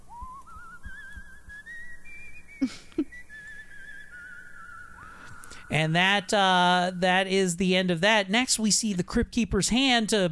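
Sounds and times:
man whistling a slow horror theme tune: 0.0s - 5.7s
faint noise: 0.0s - 10.3s
speech: 2.6s - 3.0s, 5.7s - 10.3s.

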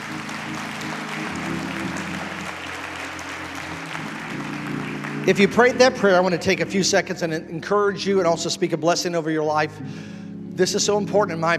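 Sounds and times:
audience clapping in sustained applause: 0.0s - 6.9s
low sustained organ or keyboard tone humming: 0.0s - 11.5s
speech: 5.3s - 11.5s.

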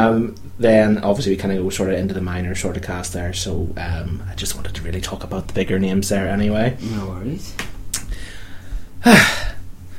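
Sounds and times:
speech: 0.0s - 8.1s, 9.0s - 9.5s
low steady hum: 0.0s - 9.9s
person taking a short breath: 8.1s - 9.9s.

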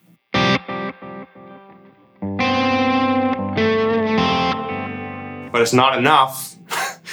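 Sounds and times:
electric guitar through a tape delay effect: 0.4s - 5.4s
speech: 5.6s - 6.5s
laughter: 6.7s - 7.1s.

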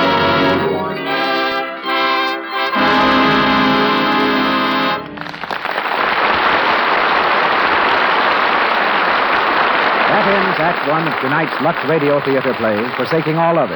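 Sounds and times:
musical chord: 0.0s - 5.4s
heavy rain pouring down: 5.4s - 13.7s
speech: 10.7s - 13.7s.

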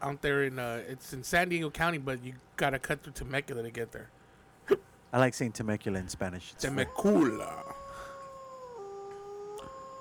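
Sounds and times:
speech: 0.0s - 7.7s
wolf howling: 6.6s - 9.9s.

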